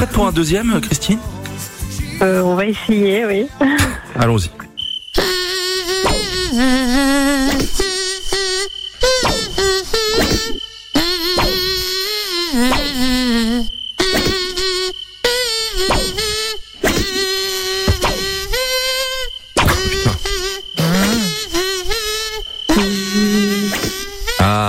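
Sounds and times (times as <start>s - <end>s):
speech: 0.0s - 1.4s, 2.2s - 5.4s, 6.5s - 6.8s
person imitating a mosquito buzzing a song melody: 5.1s - 24.6s.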